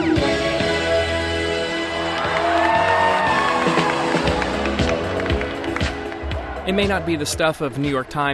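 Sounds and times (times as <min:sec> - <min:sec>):
music: 0:00.0 - 0:08.3
loud crowd cheering and whooping: 0:01.8 - 0:07.5
speech: 0:06.7 - 0:08.3.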